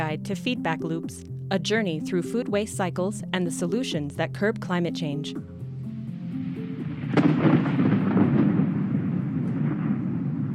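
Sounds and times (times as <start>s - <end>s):
speech: 0.0s - 5.6s
thunder cracking and rumbling: 5.9s - 10.5s.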